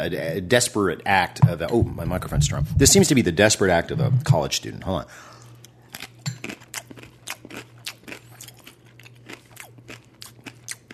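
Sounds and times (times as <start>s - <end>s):
speech: 0.0s - 5.4s
steady low hum: 1.4s - 4.8s
crunching dry ramen noodles with seasoning and cottage cheese: 5.8s - 10.9s.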